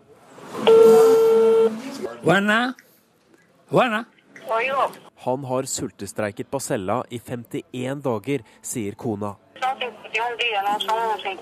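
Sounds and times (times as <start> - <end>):
electronic telephone tone of a call placed in Havana Cuba: 0.7 - 1.8
speech: 2.2 - 2.8, 3.7 - 11.4
voices speaking over a phone line: 9.6 - 11.4.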